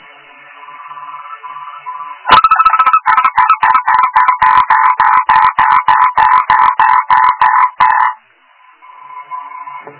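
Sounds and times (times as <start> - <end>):
frog croaking: 0.9 - 8.2.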